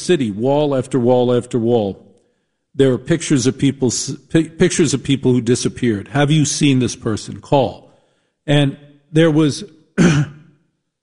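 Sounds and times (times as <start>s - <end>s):
speech: 0.0s - 2.1s, 2.8s - 7.8s, 8.5s - 10.4s
person coughing with a harsh throat-clearing sound: 10.0s - 10.6s.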